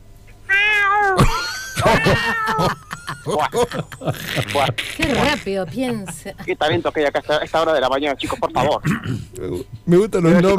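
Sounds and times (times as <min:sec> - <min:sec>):
person imitating a cat meowing: 0:00.5 - 0:01.3, 0:01.9 - 0:02.7
laughter: 0:01.2 - 0:10.5
speech: 0:02.1 - 0:10.5.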